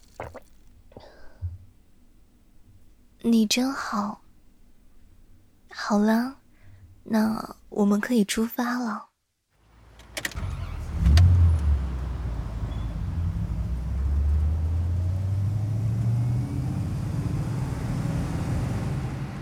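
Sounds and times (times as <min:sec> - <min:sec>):
speech: 0:03.2 - 0:04.2, 0:05.8 - 0:06.4, 0:07.1 - 0:09.1
car engine starting with a brief clunk: 0:09.6 - 0:19.4.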